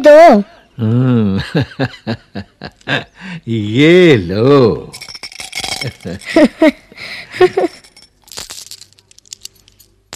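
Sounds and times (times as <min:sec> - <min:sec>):
speech: 0:00.1 - 0:05.0, 0:05.8 - 0:07.8
glass marbles clinking together inside a paper bundle: 0:04.9 - 0:06.7, 0:07.4 - 0:10.0.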